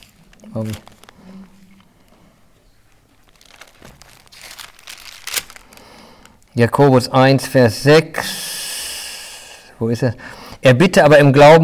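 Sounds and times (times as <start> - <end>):
Bible paper pages rustling as they are flipped through: 0.0 - 2.2, 2.8 - 6.4
speech: 0.4 - 1.0, 6.6 - 8.4, 9.8 - 11.6.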